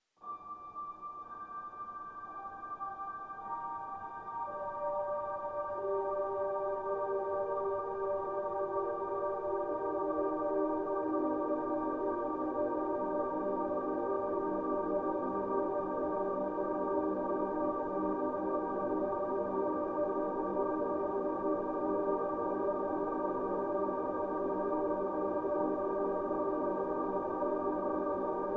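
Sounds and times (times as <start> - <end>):
looping ambient piano: 0.2 - 28.5.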